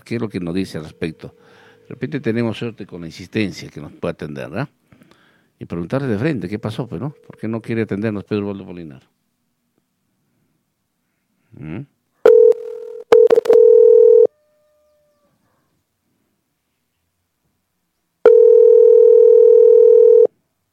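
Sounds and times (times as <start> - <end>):
speech: 0.0 - 4.8, 5.6 - 9.2, 11.5 - 11.9
phone line ringback tone of an unanswered outgoing call: 12.3 - 14.3, 18.3 - 20.3.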